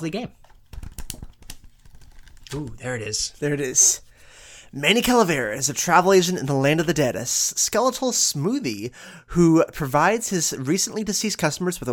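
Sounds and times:
speech: 0:00.0 - 0:00.5, 0:02.5 - 0:04.1, 0:04.7 - 0:11.9
book pages being turned: 0:00.4 - 0:04.1.

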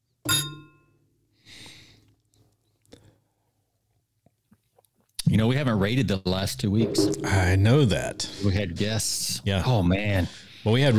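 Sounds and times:
glasses clinking in a bourbon toast: 0:00.3 - 0:01.0
speech: 0:05.4 - 0:10.9.

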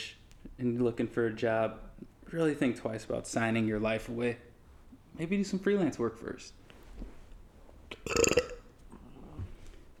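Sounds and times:
quiet room noise: 0:00.0 - 0:09.9
speech: 0:00.6 - 0:04.5, 0:05.2 - 0:06.6, 0:08.0 - 0:08.4
loud raspy burp: 0:08.0 - 0:08.7.

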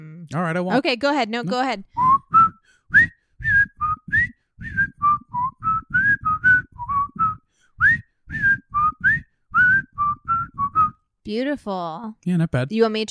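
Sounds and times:
speech: 0:00.3 - 0:02.0, 0:11.3 - 0:13.1
person whistling a lively melodic tune: 0:02.0 - 0:11.0.

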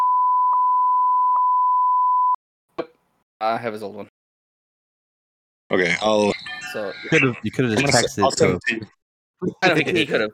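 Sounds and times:
single-tone censor bleep over a spoken phone number: 0:00.0 - 0:02.4
speech: 0:02.8 - 0:04.1, 0:05.7 - 0:10.3.

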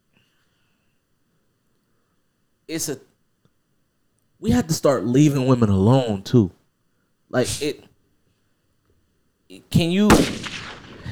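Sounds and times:
speech: 0:02.7 - 0:03.1, 0:04.4 - 0:06.6, 0:07.3 - 0:07.9, 0:09.5 - 0:10.5
gunshot sound effect: 0:10.0 - 0:11.0.

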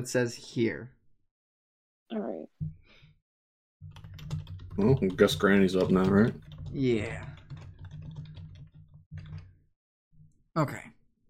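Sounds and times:
speech: 0:00.0 - 0:01.0, 0:02.1 - 0:02.8, 0:04.8 - 0:07.3, 0:10.6 - 0:10.9
rapid typing on a computer keyboard: 0:03.8 - 0:09.6.

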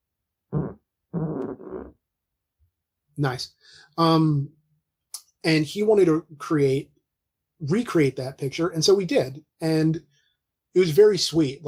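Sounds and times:
rasping fart: 0:00.5 - 0:02.0
speech: 0:03.2 - 0:04.6, 0:05.4 - 0:06.9, 0:07.6 - 0:10.1, 0:10.8 - 0:11.6.

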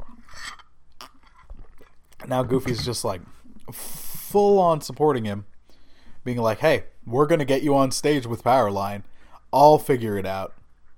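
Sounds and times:
person sipping tea: 0:00.0 - 0:04.2
speech: 0:02.2 - 0:05.5, 0:06.2 - 0:10.6.

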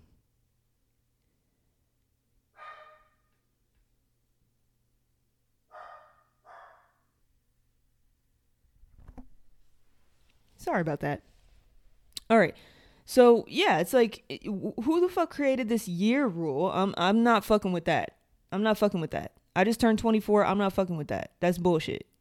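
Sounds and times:
dog barking: 0:02.6 - 0:03.4, 0:05.7 - 0:07.1
speech: 0:10.7 - 0:11.3, 0:12.3 - 0:22.1.

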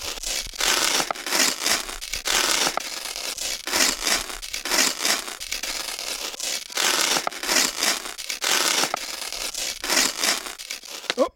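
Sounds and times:
paper envelope from a postal delivery being torn open: 0:00.0 - 0:11.3.

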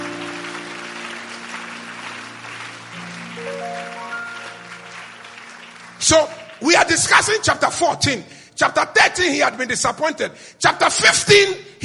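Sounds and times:
sustained keyboard chords: 0:00.0 - 0:06.6
crowd applauding: 0:00.0 - 0:08.0
speech: 0:06.0 - 0:11.8.

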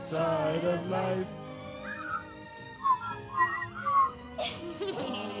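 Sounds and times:
speech: 0:00.1 - 0:01.4
person whistling a short melody: 0:01.8 - 0:04.2
laughter: 0:04.4 - 0:05.3.

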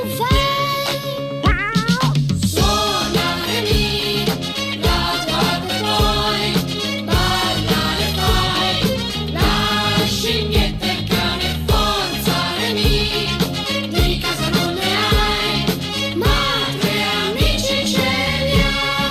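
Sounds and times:
cartoon theme song with sung melody and steady beat: 0:00.1 - 0:19.1.

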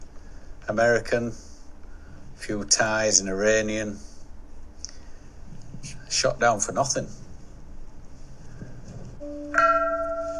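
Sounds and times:
faint outdoor background: 0:00.0 - 0:10.3
speech: 0:00.7 - 0:01.5, 0:02.4 - 0:04.1, 0:06.1 - 0:07.2
soft rising hum: 0:01.6 - 0:10.3
large peace bell struck at a shrine: 0:09.2 - 0:10.3.

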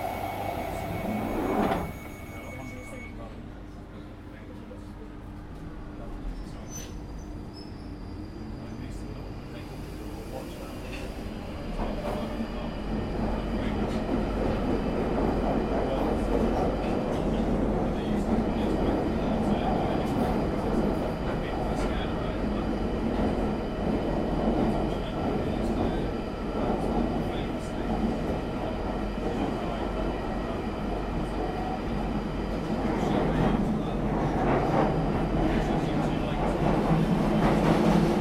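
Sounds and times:
thin high tones: 0:00.0 - 0:03.2
train rumbling: 0:00.0 - 0:03.8, 0:06.2 - 0:38.1.

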